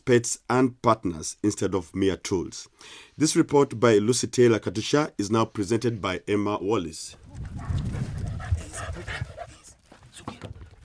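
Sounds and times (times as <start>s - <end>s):
speech: 0.1s - 8.0s
sniffer dog trained to find ivory panting and sniffing: 7.5s - 9.9s.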